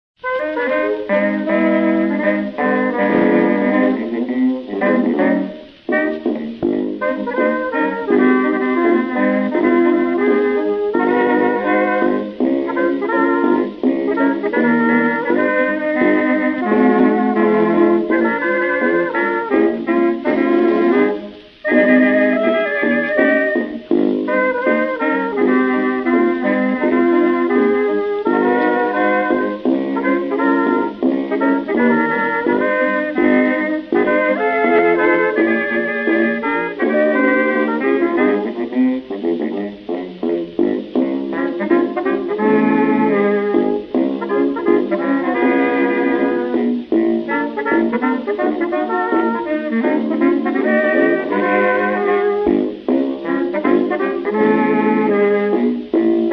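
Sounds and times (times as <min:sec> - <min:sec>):
blues music: 0:00.2 - 0:56.3.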